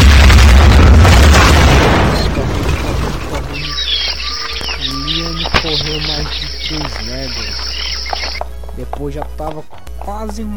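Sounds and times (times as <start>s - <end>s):
car exploding after a lighter ignites tree leaves on its seat: 0.0s - 3.5s
faint chirping tones: 2.0s - 8.4s
speech: 8.8s - 10.5s.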